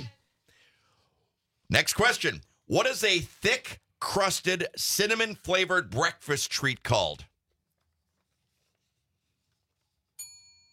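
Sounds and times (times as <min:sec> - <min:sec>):
speech: 0:01.7 - 0:07.3
soft quiz bell ding rung by a contestant: 0:10.2 - 0:10.7.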